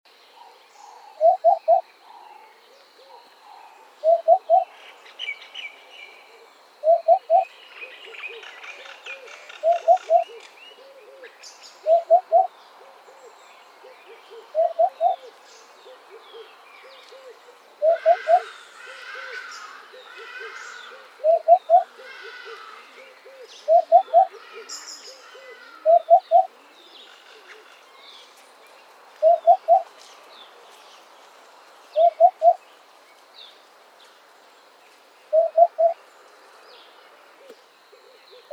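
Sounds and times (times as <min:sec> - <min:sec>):
hoopoe calling: 0:00.4 - 0:02.3, 0:03.0 - 0:04.8, 0:06.3 - 0:27.8, 0:29.2 - 0:30.8, 0:31.9 - 0:32.6, 0:35.3 - 0:36.0, 0:37.4 - 0:38.5.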